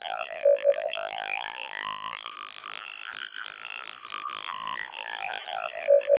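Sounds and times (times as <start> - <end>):
siren through CODEC2 vocoder at 700 bps: 0.2 - 1.1, 5.6 - 6.1.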